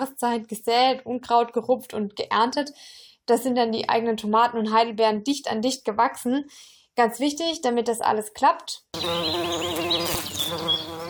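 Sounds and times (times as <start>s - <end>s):
speech: 0.0s - 11.0s
bees buzzing: 9.0s - 11.0s.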